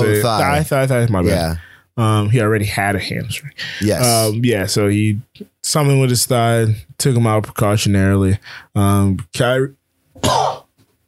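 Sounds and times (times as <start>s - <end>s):
speech: 0.0s - 10.6s
person coughing: 10.2s - 10.7s.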